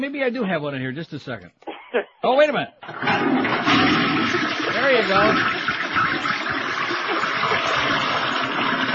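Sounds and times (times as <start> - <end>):
speech: 0.0 - 6.4
toilet flushing: 2.8 - 8.9.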